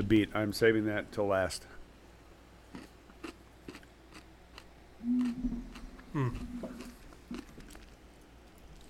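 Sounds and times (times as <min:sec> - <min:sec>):
speech: 0:00.1 - 0:01.8, 0:05.0 - 0:06.9
chewing pickled mushrooms with soft wet crunches: 0:02.7 - 0:08.0
person humming a brief murmur: 0:05.0 - 0:06.9.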